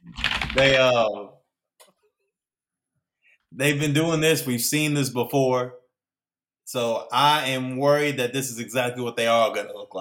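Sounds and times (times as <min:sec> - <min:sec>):
rapid clacking of keys on a computer keyboard: 0:00.1 - 0:00.8
speech: 0:00.6 - 0:01.3, 0:03.6 - 0:05.8, 0:06.7 - 0:09.9.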